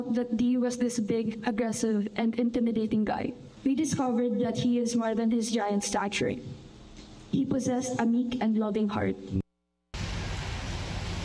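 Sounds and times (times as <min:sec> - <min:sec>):
speech: 0:00.0 - 0:06.6, 0:07.3 - 0:09.4
heavy rain pouring: 0:10.0 - 0:11.2.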